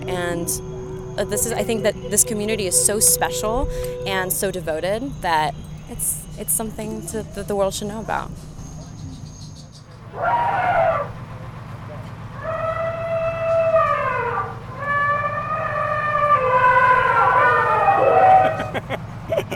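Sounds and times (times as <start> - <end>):
signature horn of a mammoth-shaped art car: 0.0 - 8.3, 12.6 - 18.7
continuous low engine rumble of a mammoth-shaped art car: 0.0 - 19.5
speech: 0.4 - 8.5
laughter: 17.5 - 19.5.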